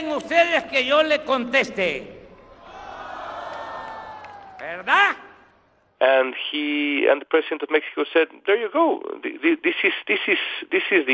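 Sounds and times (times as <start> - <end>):
speech: 0.0 - 2.2, 4.6 - 5.2, 6.0 - 11.1
large rally crowd shouting no in unison: 2.5 - 4.8.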